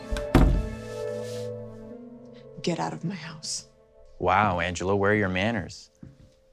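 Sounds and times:
door shutting thunk: 0:00.1 - 0:00.8
speech: 0:02.7 - 0:06.0.

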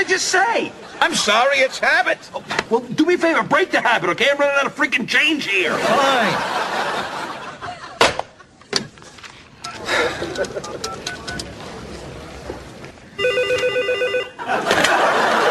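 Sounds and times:
speech: 0:00.0 - 0:07.2, 0:10.4 - 0:11.2, 0:14.4 - 0:15.2
laughter: 0:05.6 - 0:08.7, 0:09.7 - 0:11.2, 0:14.3 - 0:15.4
telephone ringing with electronic trilling: 0:13.2 - 0:14.5.

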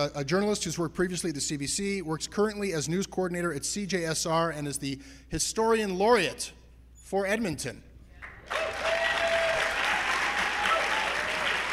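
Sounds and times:
speech: 0:00.0 - 0:07.9
live theatre audience applause: 0:08.3 - 0:11.7
faint whistles and cheers: 0:08.5 - 0:11.7.

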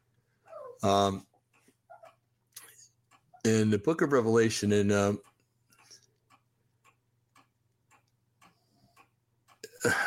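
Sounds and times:
small dog whining: 0:00.4 - 0:00.8
soft whimpers: 0:00.4 - 0:00.9
speech: 0:00.8 - 0:01.3, 0:03.4 - 0:05.3, 0:09.8 - 0:10.0.

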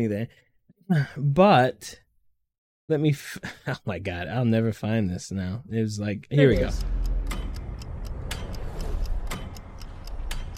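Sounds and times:
speech: 0:00.0 - 0:02.0, 0:02.9 - 0:07.0
clock second hand ticking: 0:06.4 - 0:10.5
low rumble: 0:06.5 - 0:10.5.

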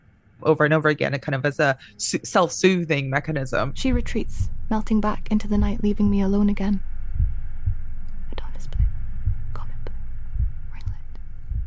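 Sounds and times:
speech: 0:00.4 - 0:06.9
slowed-down heartbeat thumps: 0:03.2 - 0:11.6.

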